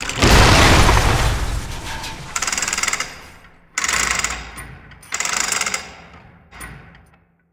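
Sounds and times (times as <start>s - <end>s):
trap impact: 0.0s - 3.5s.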